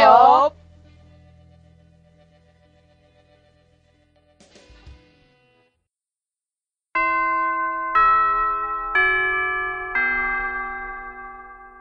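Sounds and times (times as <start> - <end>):
school chime ringing: 7.0 - 11.8.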